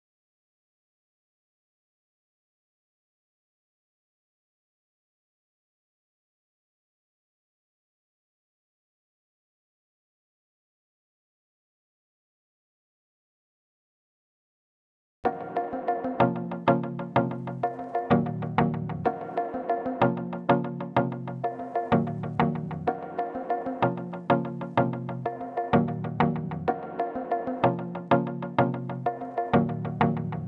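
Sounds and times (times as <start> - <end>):
126 BPM A-sharp minor synth pluck: 15.3 - 30.4.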